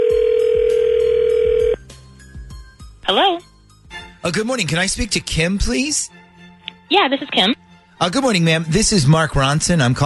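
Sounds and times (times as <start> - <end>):
telephone dial tone: 0.0 - 1.8
speech: 3.1 - 3.5, 4.2 - 6.2, 6.9 - 10.0.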